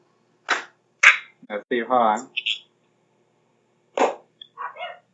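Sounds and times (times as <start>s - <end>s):
hand clap: 0.5s - 1.3s, 4.0s - 4.2s
speech: 1.5s - 2.4s.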